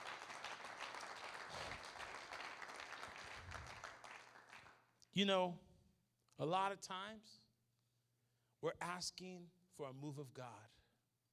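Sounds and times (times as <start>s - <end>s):
crowd clapping enthusiastically: 0.0s - 4.9s
speech: 5.2s - 5.7s, 6.4s - 7.4s, 8.6s - 10.8s.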